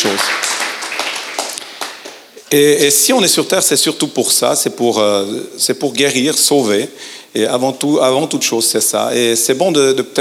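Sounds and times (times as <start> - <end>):
audience applauding: 0.0 - 2.3
speech: 2.5 - 10.1.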